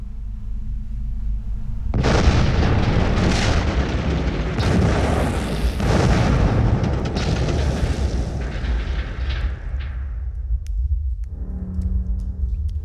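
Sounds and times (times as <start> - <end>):
low rumble before an underground mine explosion: 0.0 - 12.8
underground gas explosion in a mine: 1.9 - 10.6
sustained roaring rumbling blast of flame in an underground mine: 1.9 - 10.7.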